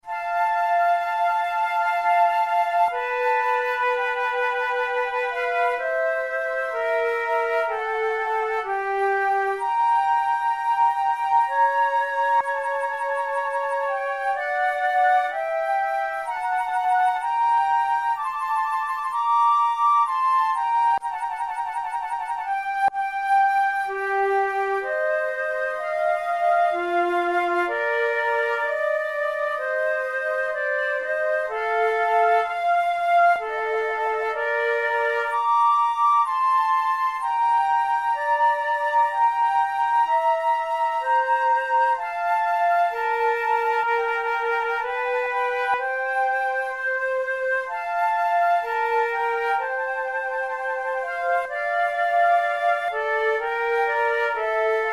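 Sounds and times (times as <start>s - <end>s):
flute playing a slow sonata movement: 0.0s - 54.9s.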